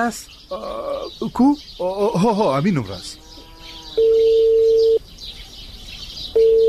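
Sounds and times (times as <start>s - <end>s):
speech: 0.0s - 3.2s, 4.0s - 4.4s
ringback tone of an unanswered outgoing phone call: 4.0s - 5.0s, 6.4s - 6.6s.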